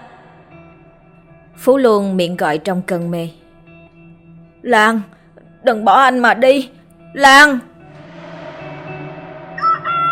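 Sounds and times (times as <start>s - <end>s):
speech: 1.6s - 3.4s, 4.6s - 7.7s
rooster crowing: 9.6s - 10.1s.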